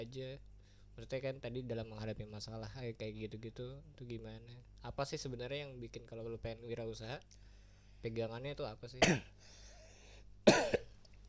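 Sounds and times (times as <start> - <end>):
speech: 0.0 - 9.6, 10.4 - 10.8
low room hum: 0.0 - 11.2
person coughing harshly: 9.0 - 9.4, 10.4 - 11.0.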